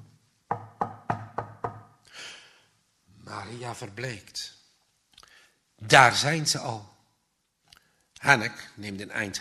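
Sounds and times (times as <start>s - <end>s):
loud hollow knocks on a wooden back door: 0.5s - 2.0s
speech: 3.3s - 4.6s, 5.8s - 7.0s, 8.2s - 9.3s.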